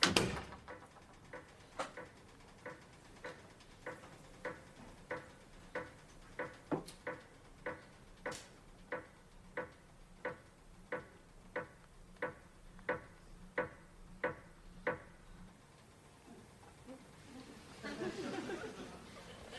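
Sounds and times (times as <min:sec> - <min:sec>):
grandfather clock ticking loudly: 0:00.8 - 0:15.2
laughter: 0:17.3 - 0:19.5.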